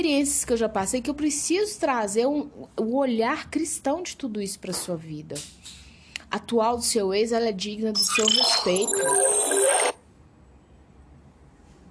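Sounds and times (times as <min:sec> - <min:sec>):
speech: 0:00.0 - 0:09.9
phone ringing: 0:08.0 - 0:10.0.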